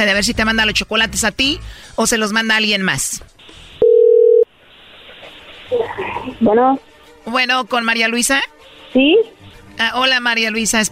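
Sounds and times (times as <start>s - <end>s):
speech: 0.0s - 3.6s, 5.7s - 10.9s
telephone ringing tone on an outgoing call: 3.8s - 4.5s.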